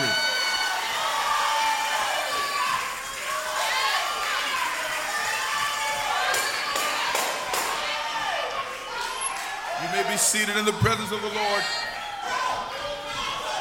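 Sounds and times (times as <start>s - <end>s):
church audience cheering and shouting praise: 0.0s - 13.5s
claps: 1.9s - 9.6s
speech: 10.3s - 11.9s.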